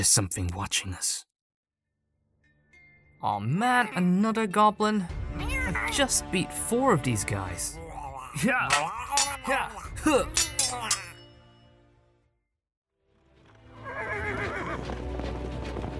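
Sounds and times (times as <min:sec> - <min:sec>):
speech: 0:00.0 - 0:01.3, 0:03.2 - 0:07.8, 0:08.4 - 0:11.0
hooves clip-clopping: 0:13.4 - 0:15.9
horse pulling a cart whinnying: 0:13.8 - 0:14.9.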